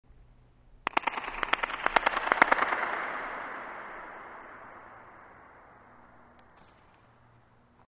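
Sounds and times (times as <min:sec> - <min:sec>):
hand claps: 0:00.9 - 0:05.0.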